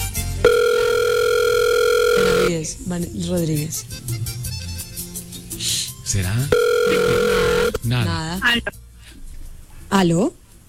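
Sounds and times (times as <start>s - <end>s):
electronic ringback tone through a phone line: 0.4s - 3.7s, 6.4s - 7.8s
speech: 2.2s - 4.4s, 6.1s - 8.8s, 9.9s - 10.4s.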